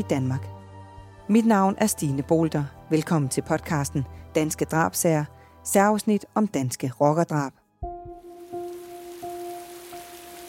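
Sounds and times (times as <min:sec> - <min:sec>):
speech: 0:00.0 - 0:00.6, 0:01.3 - 0:07.6
heavy rain pouring down: 0:08.3 - 0:10.4.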